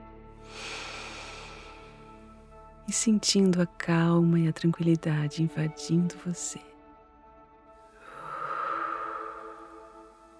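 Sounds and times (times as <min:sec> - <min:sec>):
slow deep breath during a guided relaxation exercise: 0:00.4 - 0:02.2, 0:07.9 - 0:10.3
speech: 0:02.9 - 0:06.7.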